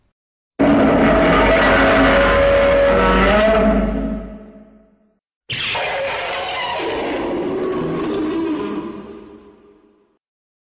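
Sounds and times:
pitched-up reversed monster roar: 0.6 - 4.4, 5.8 - 9.6.

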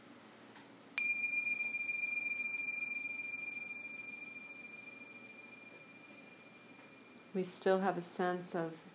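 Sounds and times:
meditation bell struck and ringing with a metallic tone: 1.0 - 7.4
speech: 7.4 - 8.9.

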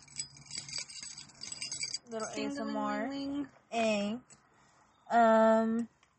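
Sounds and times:
metallic keys jangling inside a small pouch in a purse: 0.0 - 2.4
person speaking in short bursts: 2.1 - 4.0.

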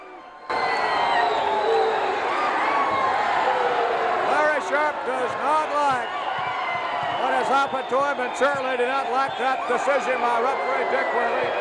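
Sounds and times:
large indoor wrestling crowd cheering: 0.0 - 11.6
scattered whistles from the crowd: 0.1 - 2.2, 6.0 - 9.8
scattered shouts from the crowd: 0.1 - 11.6
speech: 4.9 - 6.2, 7.4 - 11.6.

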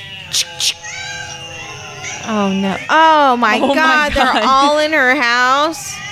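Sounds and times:
black cats yowling and caterwauling: 0.0 - 6.0
cat harsh loud screeching bursts: 0.3 - 2.3
speech: 2.3 - 5.8
laughter: 3.3 - 5.7.

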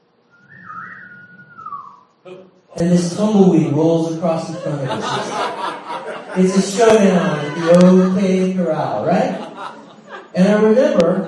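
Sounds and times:
lone whistle playing a short drawn-out tune: 0.3 - 2.1
speech: 2.2 - 9.4, 10.3 - 11.2
laughter: 2.8 - 11.2.

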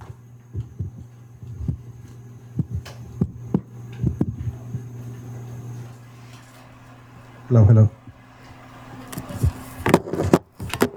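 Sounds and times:
microphone static sharp crackling bursts: 0.0 - 6.2
microphone low steady hum: 0.0 - 10.4
speech: 7.5 - 8.0.

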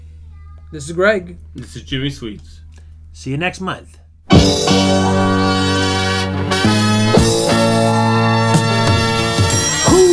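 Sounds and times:
speech: 0.7 - 2.6, 3.2 - 5.5
1970s song recording sung by an athlete and showman: 4.3 - 10.1.

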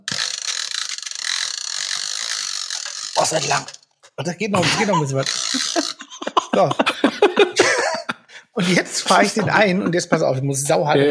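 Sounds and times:
hair dryer cord pulled out with ratcheting whir: 0.0 - 4.0, 4.9 - 6.0
speech: 3.2 - 7.9, 8.6 - 11.1
laughter: 4.6 - 11.1.

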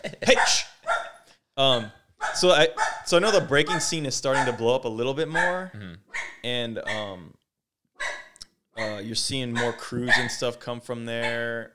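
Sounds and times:
speech: 0.2 - 0.7, 1.6 - 7.4, 8.8 - 11.7
dog barking: 0.3 - 1.3, 2.2 - 4.7, 5.3 - 7.1, 8.0 - 10.4, 11.2 - 11.5.

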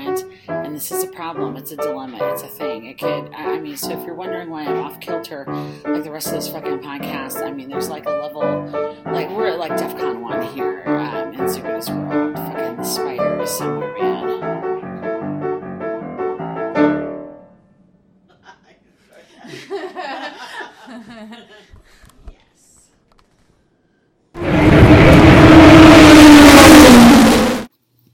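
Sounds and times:
speech: 0.2 - 10.9, 11.5 - 14.4
laughter and chuckling voices: 18.3 - 21.7
Indy Lights race car engine accelerating: 24.4 - 27.7.

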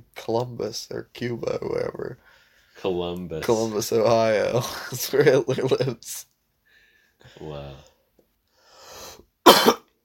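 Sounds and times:
speech: 0.2 - 6.3, 7.2 - 7.9
laughter: 4.6 - 6.0
soft rasping intake of breath: 8.6 - 9.3
wet phlegmy cough: 9.4 - 9.9.

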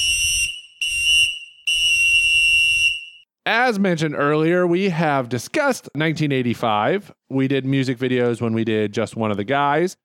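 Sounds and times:
shrill lifeguard whistle blasts: 0.0 - 3.3
speech: 3.4 - 10.0.

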